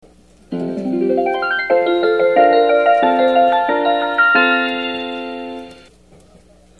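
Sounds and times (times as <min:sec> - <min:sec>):
JR West train station chime: 0:00.5 - 0:05.9.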